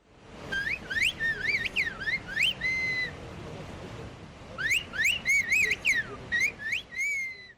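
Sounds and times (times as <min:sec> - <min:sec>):
faint outdoor noise: 0:00.0 - 0:07.5.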